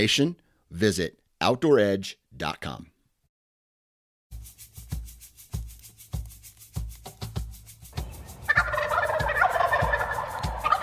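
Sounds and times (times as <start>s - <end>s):
speech: 0.0s - 2.9s
rhythmic thumping beats: 4.3s - 10.8s
wild turkey gobbling: 8.0s - 10.8s.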